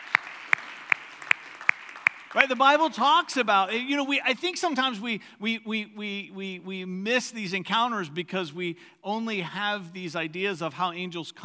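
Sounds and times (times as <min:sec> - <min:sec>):
audience clapping in a slow steady rhythm: 0:00.0 - 0:03.5
speech: 0:02.3 - 0:11.4.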